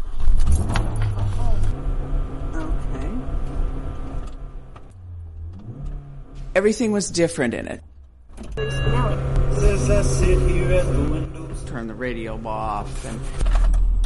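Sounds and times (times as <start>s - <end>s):
borrowed car engine starting on a rainy day: 0.0s - 14.0s
speech: 6.6s - 7.9s, 9.9s - 13.5s
faint tonal hum: 8.6s - 13.4s.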